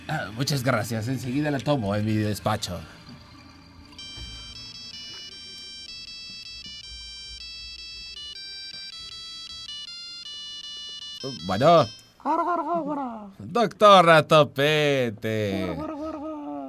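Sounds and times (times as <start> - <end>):
speech: 0.1 - 3.0, 11.2 - 15.9
electronic telephone ringtone with stepping melodic beeps for an incoming call: 3.4 - 12.2.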